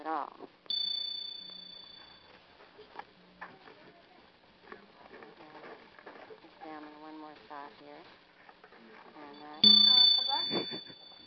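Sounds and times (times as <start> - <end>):
small bell ringing: 0.7 - 2.4, 9.6 - 11.2
person talking: 9.3 - 11.0.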